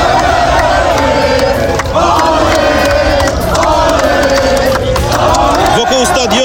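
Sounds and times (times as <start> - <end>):
football fans singing and cheering in a roaring chant: 0.0 - 6.4.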